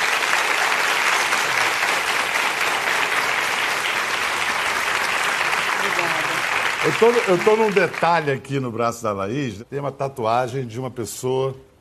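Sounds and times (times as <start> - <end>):
studio audience applause: 0.0 - 8.6
speech: 7.0 - 11.7.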